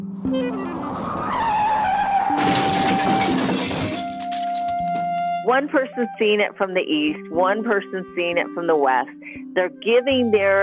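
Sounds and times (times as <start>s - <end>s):
car engine roaring: 0.0s - 3.7s
speech: 0.2s - 1.4s, 5.5s - 10.6s
car tires squealing in a long skid: 0.2s - 5.4s
car crash of crunching metal: 0.5s - 5.2s
car glass shattering in crash: 1.0s - 5.4s.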